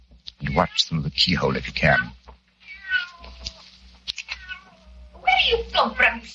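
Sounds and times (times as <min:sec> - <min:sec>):
cat yowling: 0:00.4 - 0:00.9, 0:01.8 - 0:06.3
speech: 0:00.6 - 0:02.2.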